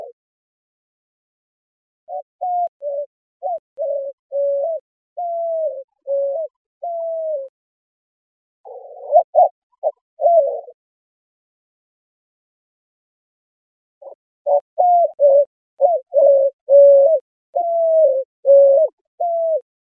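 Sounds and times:
white-winged dove cooing: 0:02.1 - 0:07.5, 0:08.6 - 0:10.8, 0:14.0 - 0:19.7.

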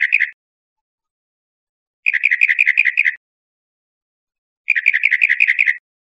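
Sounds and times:
Northern mockingbird giving harsh rapid rattling bursts: 0:00.0 - 0:00.4, 0:02.1 - 0:03.2, 0:04.7 - 0:05.8.

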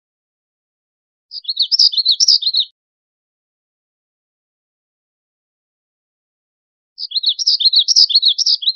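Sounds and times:
Black-throated gray warbler song: 0:01.3 - 0:02.8, 0:07.0 - 0:08.7.

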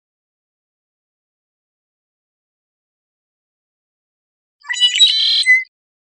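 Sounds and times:
red-winged blackbird singing: 0:04.6 - 0:05.6.

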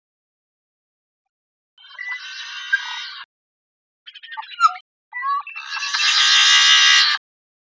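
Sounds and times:
yellow-headed blackbird buzzy rasp: 0:01.8 - 0:03.3, 0:05.6 - 0:07.2.

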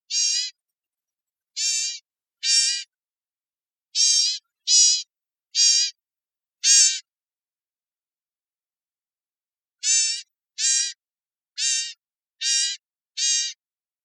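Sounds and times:
bird giving harmonic-rich calls in Costa Rica: 0:00.1 - 0:00.6, 0:01.6 - 0:02.9, 0:04.0 - 0:06.0, 0:06.6 - 0:07.1, 0:09.8 - 0:11.0, 0:11.6 - 0:13.6.

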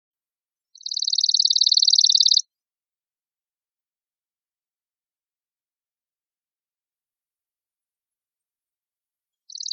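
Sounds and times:
chipping sparrow giving a dry rapid even trill: 0:00.8 - 0:02.5, 0:09.5 - 0:09.7.

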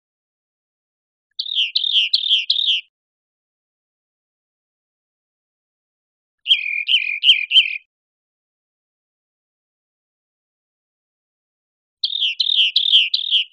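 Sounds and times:
rock wren singing slurred notes: 0:01.3 - 0:02.9, 0:06.4 - 0:07.9, 0:12.0 - 0:13.5.

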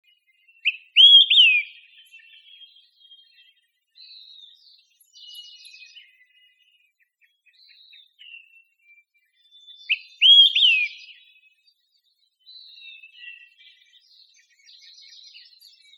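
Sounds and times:
soft faint bird notes: 0:00.0 - 0:15.9
olive-sided flycatcher calling in Costa Rica: 0:00.6 - 0:01.9, 0:09.9 - 0:11.2.

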